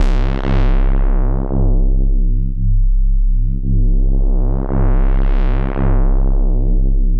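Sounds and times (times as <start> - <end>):
jungle bass C2: 0.0 - 7.1.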